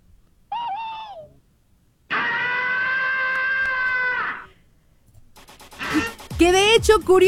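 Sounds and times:
cartoon character scream voiced by a person: 0:00.5 - 0:01.3, 0:02.1 - 0:04.6, 0:05.8 - 0:06.2
speech: 0:06.4 - 0:07.2.

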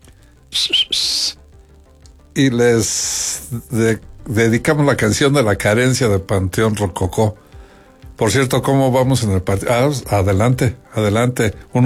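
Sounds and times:
shrill high whistled greeting from a working crowd: 0:00.5 - 0:01.4
speech: 0:02.4 - 0:07.5, 0:08.2 - 0:11.8.

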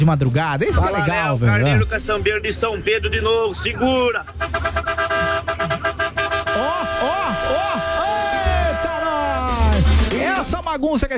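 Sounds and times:
speech: 0:00.0 - 0:04.9, 0:10.4 - 0:11.1
rising and falling voice-like tones: 0:01.6 - 0:10.6
car horn honking: 0:04.0 - 0:10.6.

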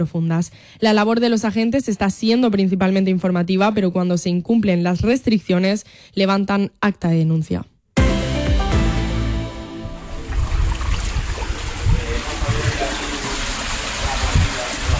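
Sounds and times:
speech: 0:00.0 - 0:07.7
brief musical tone: 0:08.0 - 0:11.2
water gushing from a burst leak: 0:10.2 - 0:14.9.

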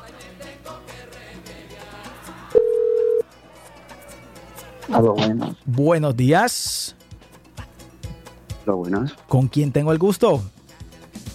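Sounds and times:
telephone dial tone while dialing a call: 0:02.6 - 0:03.2
speech: 0:04.9 - 0:07.0, 0:08.7 - 0:10.6.

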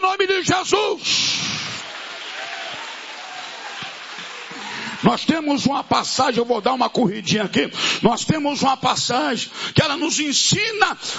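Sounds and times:
speech: 0:00.2 - 0:01.6, 0:05.0 - 0:11.1
large crowd clapping in praise: 0:01.3 - 0:05.5.

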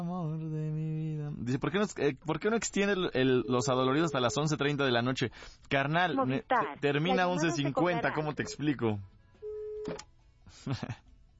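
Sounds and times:
speech: 0:00.0 - 0:00.6, 0:01.5 - 0:09.1, 0:09.8 - 0:11.0
voicemail line phone tone: 0:03.4 - 0:04.5, 0:06.6 - 0:08.6, 0:09.4 - 0:10.0
voicemail recorded voice prompt: 0:03.4 - 0:04.6, 0:05.9 - 0:09.0.

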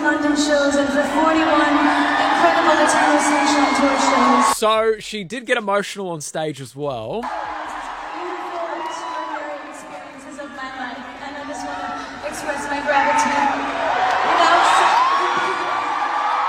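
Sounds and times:
speech: 0:00.1 - 0:07.6
large concert crowd cheering and whooping: 0:01.0 - 0:04.6, 0:07.2 - 0:16.4.

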